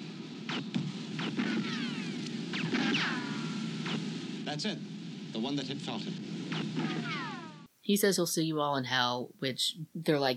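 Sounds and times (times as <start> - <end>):
gunshots: 0.0 - 7.7
steady hiss and hum: 0.0 - 10.3
speech: 4.5 - 7.2, 7.9 - 10.3.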